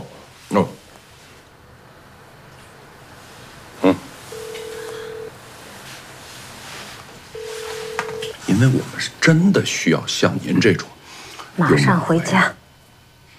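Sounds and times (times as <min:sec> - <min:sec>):
speech: 0:00.5 - 0:00.8, 0:08.5 - 0:10.9, 0:11.6 - 0:12.6
phone ringback tone: 0:04.3 - 0:05.4, 0:07.3 - 0:08.4.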